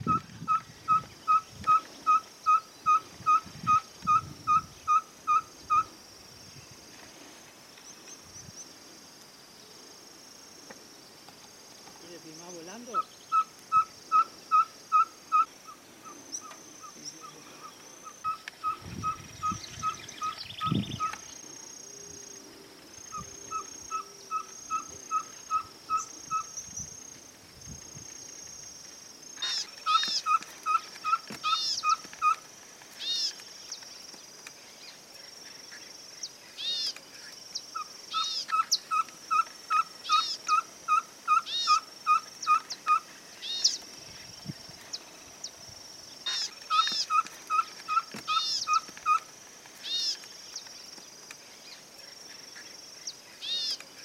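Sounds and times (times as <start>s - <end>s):
Caburé Chico owl calling: 0.0s - 5.9s, 12.8s - 21.6s, 23.0s - 26.8s, 29.4s - 32.4s, 33.0s - 33.4s, 36.6s - 37.0s, 37.7s - 43.8s, 46.2s - 50.2s, 53.3s - 53.8s.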